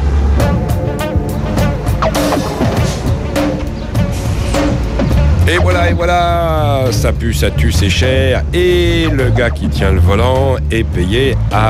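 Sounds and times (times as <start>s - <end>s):
heavy trucks passing on road: 0.0s - 11.6s
hissing noise: 1.8s - 5.6s
speech: 5.5s - 11.6s.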